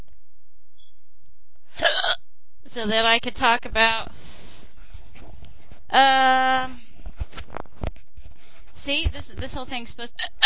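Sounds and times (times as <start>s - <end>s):
hiccup: 1.8s - 2.2s, 10.2s - 10.4s
speech: 2.8s - 4.2s, 5.9s - 6.8s, 8.8s - 10.4s.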